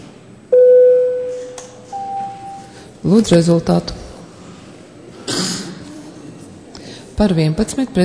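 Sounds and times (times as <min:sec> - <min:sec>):
parliamentary electronic voting call bell tone: 0:00.6 - 0:02.7
room murmur: 0:01.1 - 0:08.0
speech: 0:03.0 - 0:04.0, 0:07.2 - 0:08.0.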